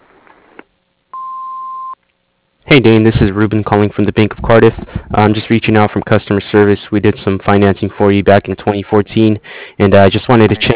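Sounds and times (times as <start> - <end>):
voicemail beep: 1.2 - 2.0
speech: 2.7 - 10.7.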